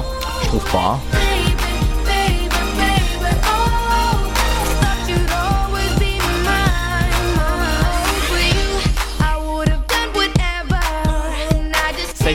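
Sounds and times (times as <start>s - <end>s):
melodic lead vocal in an upbeat pop track: 0.0s - 12.3s
steady thumping beat of an upbeat pop track: 0.0s - 12.3s
speech: 0.5s - 1.2s.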